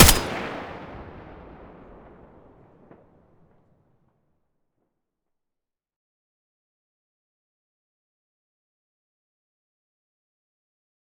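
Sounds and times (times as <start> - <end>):
M4A1 gunshot: 0.0 - 0.9.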